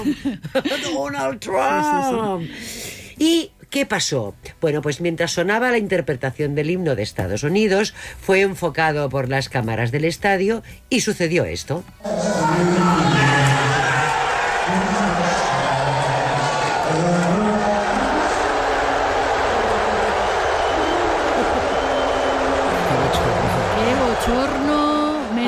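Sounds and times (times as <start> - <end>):
speech: 0.0 - 13.2
huge stadium crowd booing: 12.0 - 25.4.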